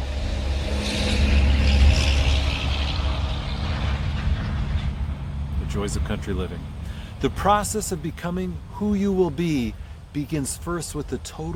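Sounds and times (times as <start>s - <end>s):
heavy vehicle engine rumbling past: 0.0s - 8.7s
steady road traffic drone outside: 0.0s - 11.5s
speech: 5.8s - 11.5s.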